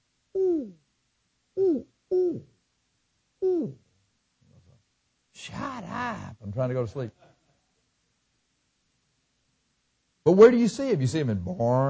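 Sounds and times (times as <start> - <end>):
human voice imitating an owl hooting: 0.3 - 0.8, 1.6 - 2.6, 3.4 - 3.9
speech: 6.6 - 7.3, 10.3 - 11.8.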